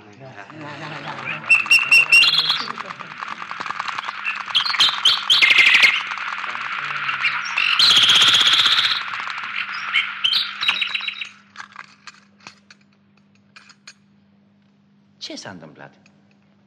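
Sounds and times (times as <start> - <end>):
laughter: 0.1 - 3.9
nightingale singing: 0.9 - 11.4
speech: 15.4 - 16.1.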